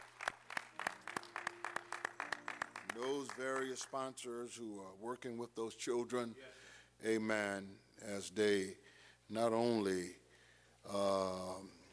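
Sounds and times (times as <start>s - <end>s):
church congregation clapping for a choir and young people: 0.0s - 4.2s
speech: 2.9s - 10.2s, 10.8s - 11.8s.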